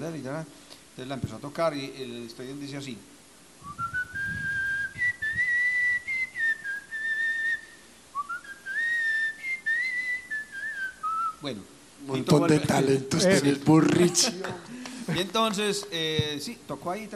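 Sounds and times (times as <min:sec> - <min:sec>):
speech: 0:00.0 - 0:04.0, 0:11.4 - 0:17.1
person whistling a lilting melody meant for clarinet: 0:03.6 - 0:11.4
laughter: 0:12.6 - 0:15.5.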